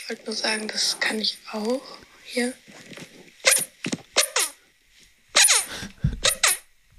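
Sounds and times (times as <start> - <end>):
speech: 0.1 - 3.1
squeaky fart-like noises made with the collarbone: 2.7 - 4.6, 5.4 - 6.7.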